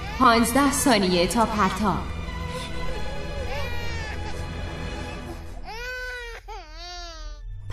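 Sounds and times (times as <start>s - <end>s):
speech: 0.2s - 2.1s
person crying and sobbing: 2.5s - 7.7s.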